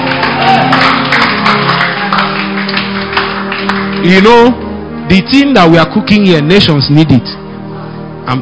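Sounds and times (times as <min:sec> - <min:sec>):
audience clapping: 0:00.0 - 0:04.6
speech: 0:04.0 - 0:07.4.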